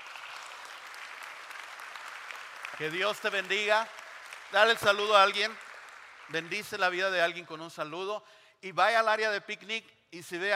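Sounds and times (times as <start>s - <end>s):
church congregation applause: 0.0s - 7.4s
speech: 2.7s - 5.6s, 6.3s - 10.5s.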